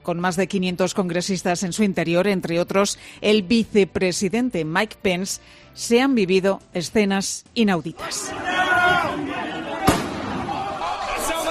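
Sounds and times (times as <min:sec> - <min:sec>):
speech: 0:00.0 - 0:09.3
crowd noise and voices in the US Capitol corridors: 0:07.9 - 0:11.4
single gunshot in the corridors of the US Capitol: 0:09.8 - 0:10.7.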